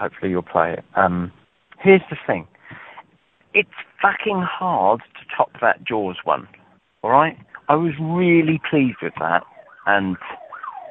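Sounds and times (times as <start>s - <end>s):
speech: 0.0s - 2.8s, 3.6s - 10.4s
police siren wailing at moderate distance: 8.8s - 10.8s.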